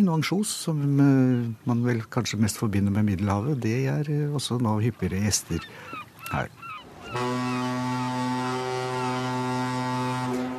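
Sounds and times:
speech: 0:00.0 - 0:07.4
coastal ferry horn blasting a deep tone: 0:07.0 - 0:10.5.

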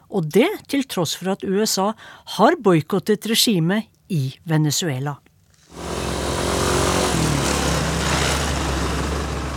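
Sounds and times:
speech: 0:00.1 - 0:05.3
motorcycle and moped engines starting and rumbling while queuing at a gas station: 0:05.7 - 0:09.5.

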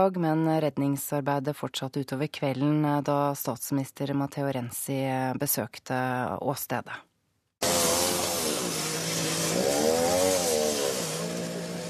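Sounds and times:
speech: 0:00.0 - 0:07.1
chainsaw cutting into train wreckage: 0:07.6 - 0:11.8.

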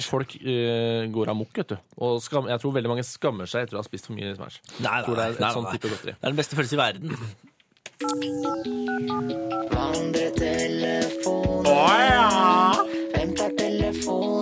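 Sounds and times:
speech: 0:00.0 - 0:14.4
electronic telephone dialing beeps: 0:08.0 - 0:09.8
bright ringing melody over punchy beats: 0:08.0 - 0:14.4.

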